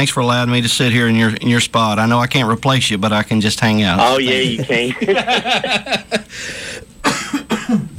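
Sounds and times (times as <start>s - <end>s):
speech: 0.0s - 7.2s
laughter: 4.2s - 6.3s
person coughing: 7.0s - 7.9s.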